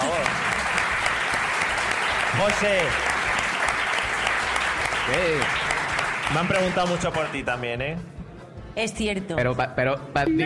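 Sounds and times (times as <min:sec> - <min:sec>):
crowd clapping: 0:00.0 - 0:08.0
speech: 0:02.4 - 0:03.1, 0:05.1 - 0:05.6, 0:06.3 - 0:08.1, 0:08.8 - 0:10.4.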